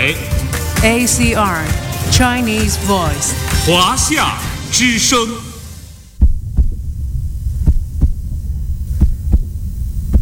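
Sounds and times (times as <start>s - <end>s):
speech: 0.0s - 5.5s
low throbbing hum: 6.0s - 10.1s
pounding heartbeat after being threatened and grabbed: 6.2s - 10.1s.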